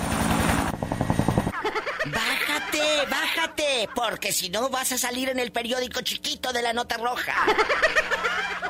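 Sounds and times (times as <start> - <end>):
helicopter rotor thumping: 0.0 - 1.6
roaring helicopter engine noise: 0.0 - 1.6
laughter: 1.6 - 4.2, 7.2 - 8.6
speech: 1.8 - 8.6.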